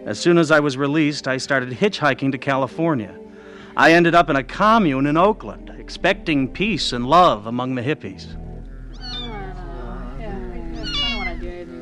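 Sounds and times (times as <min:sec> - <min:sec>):
speech: 0:00.0 - 0:08.4
low hum: 0:03.6 - 0:07.6, 0:08.2 - 0:11.8
kitten meowing: 0:08.9 - 0:09.6, 0:10.7 - 0:11.5.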